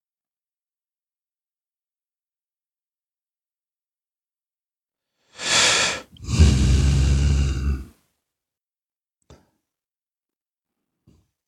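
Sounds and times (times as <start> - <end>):
exhaling: 5.4 - 7.9
inhaling through the nose: 5.4 - 7.9.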